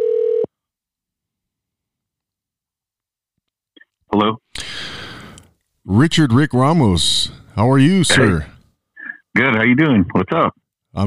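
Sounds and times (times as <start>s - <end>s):
telephone tone as a phone call is placed: 0.0s - 0.5s
speech: 4.2s - 5.0s, 5.8s - 8.6s, 9.4s - 11.0s.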